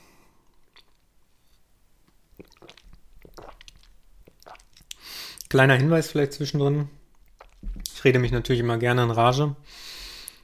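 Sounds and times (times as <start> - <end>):
person sipping a drink: 2.3 - 5.5, 7.2 - 7.9
speech: 5.5 - 7.0, 8.0 - 9.8.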